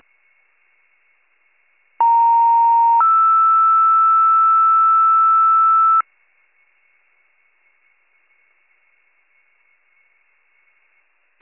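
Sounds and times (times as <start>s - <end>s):
fire pager alert: 2.0s - 6.0s.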